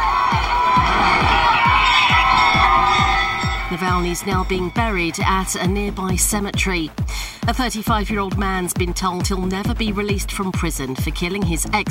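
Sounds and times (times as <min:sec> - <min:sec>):
large crowd cheering as a coffin leaves a church after a service: 0:00.0 - 0:06.5
steady low rhythmic thudding: 0:00.0 - 0:11.8
speech: 0:03.7 - 0:11.8.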